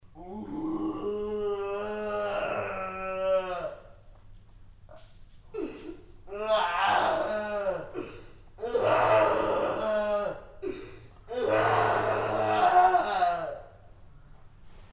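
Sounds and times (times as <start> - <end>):
monster cry: 0.2 - 3.8, 6.3 - 8.0, 8.6 - 10.6, 11.3 - 13.7.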